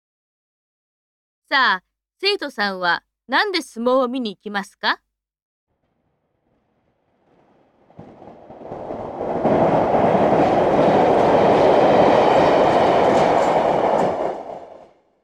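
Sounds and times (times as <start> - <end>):
speech: 1.5 - 5.0
train rumbling along the rails with rhythmic clatter: 6.6 - 15.0.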